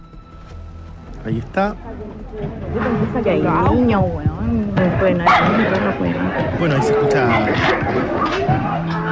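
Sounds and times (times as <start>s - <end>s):
speech: 1.2s - 9.0s
several dogs barking and yelping outdoors: 4.8s - 9.0s.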